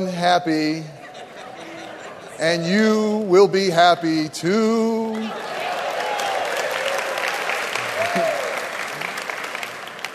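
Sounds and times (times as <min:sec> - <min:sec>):
speech: 0:00.0 - 0:01.0, 0:02.4 - 0:05.5
laughter: 0:00.1 - 0:03.2
small crowd applauding after singing: 0:05.1 - 0:10.1.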